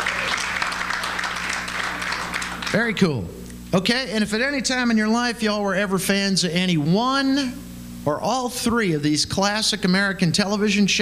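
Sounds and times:
audience clapping hands: 0:00.0 - 0:03.0
speech: 0:02.7 - 0:10.9.

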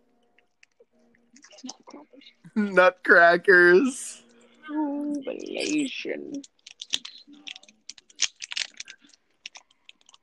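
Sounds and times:
speech: 0:01.4 - 0:06.5
chocolate wrapper crinkling and rustling: 0:05.4 - 0:10.2.

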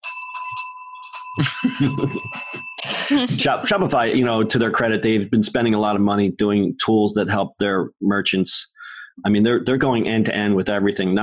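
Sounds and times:
bright metallic bell ringing: 0:00.0 - 0:03.5
laughter: 0:01.4 - 0:05.0
speech: 0:01.4 - 0:11.2.

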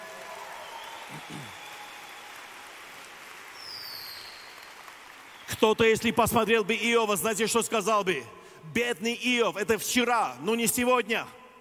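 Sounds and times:
room full of people applauding: 0:00.0 - 0:06.1
speech: 0:01.1 - 0:01.6, 0:05.6 - 0:11.4.

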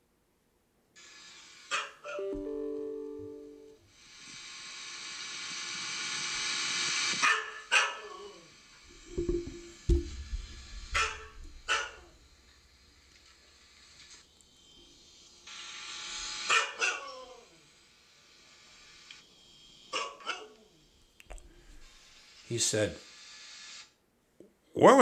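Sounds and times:
hissy noise: 0:01.0 - 0:24.9
Siberian Husky barking and howling in a training area: 0:16.5 - 0:17.3
speech: 0:22.5 - 0:23.0.

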